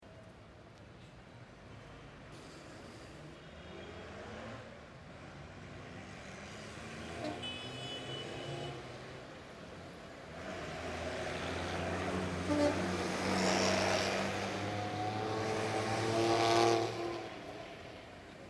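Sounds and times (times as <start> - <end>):
bus passing on an avenue: 1.5 - 18.4
motorcycle passing on an avenue: 10.7 - 18.0.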